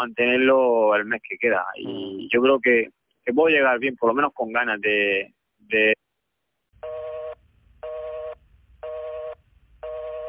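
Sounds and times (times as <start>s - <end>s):
speech: 0.0s - 6.0s
telephone busy tone after a dropped call: 6.8s - 10.2s.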